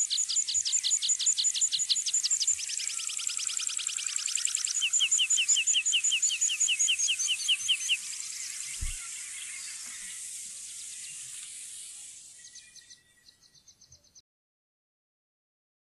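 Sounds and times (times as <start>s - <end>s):
meadow pipit singing: 0.0s - 14.1s
soft thump: 8.8s - 9.0s.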